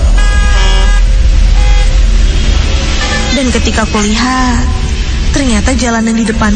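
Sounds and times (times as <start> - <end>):
car horn honking: 0.0 - 2.0
rumbling traffic noise: 0.0 - 6.5
speech: 3.5 - 4.8, 5.4 - 6.5.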